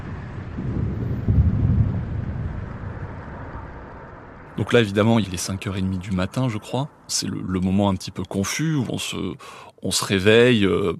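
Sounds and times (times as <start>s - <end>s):
distant explosions rumbling: 0.0s - 4.8s
speech: 4.6s - 10.9s.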